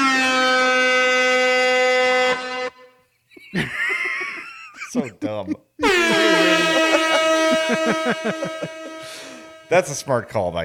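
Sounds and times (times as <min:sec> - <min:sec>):
loud blaring air horn blast: 0:00.0 - 0:03.0, 0:05.8 - 0:10.6
laughter: 0:03.3 - 0:09.6
speech: 0:04.9 - 0:06.7, 0:07.7 - 0:10.6.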